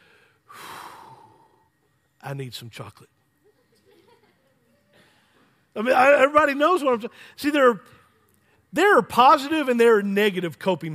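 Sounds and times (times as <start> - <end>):
loud airy inhalation: 0.0 - 1.8
speech: 2.2 - 3.2, 5.8 - 8.0, 8.7 - 10.9
laughter: 3.4 - 5.3.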